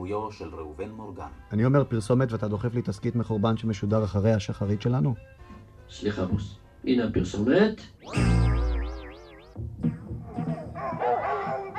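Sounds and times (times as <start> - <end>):
speech: 0.0 - 8.5
dog howling: 10.7 - 11.7
several dogs barking and yipping: 11.0 - 11.7.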